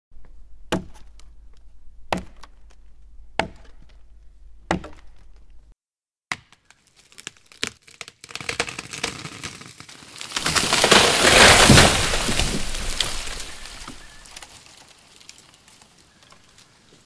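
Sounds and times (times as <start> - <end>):
tree falling: 6.9 - 16.7.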